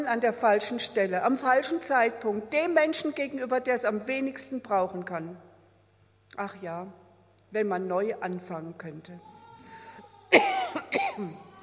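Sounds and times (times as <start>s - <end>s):
speech: 0.0s - 5.5s, 6.4s - 9.3s, 10.3s - 11.5s
faint steady hum: 0.0s - 11.6s
person coughing: 10.3s - 11.4s.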